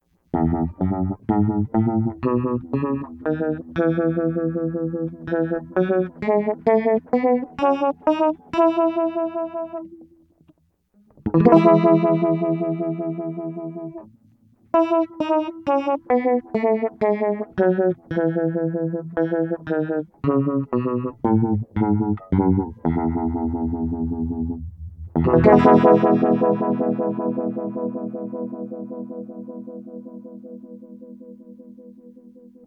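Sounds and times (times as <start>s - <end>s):
guitars in E major with chorus pedal effect: 0.3s - 32.6s.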